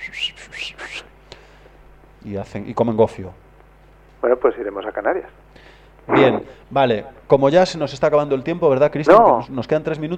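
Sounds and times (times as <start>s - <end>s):
person whistling: 0.0s - 1.1s
speech: 2.2s - 3.5s, 4.2s - 5.5s, 6.1s - 10.1s.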